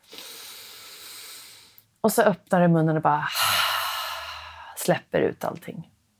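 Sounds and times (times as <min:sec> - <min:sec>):
steady inhale through the nose: 0:00.0 - 0:01.8, 0:03.3 - 0:04.8
speech: 0:02.0 - 0:03.5, 0:04.8 - 0:05.9.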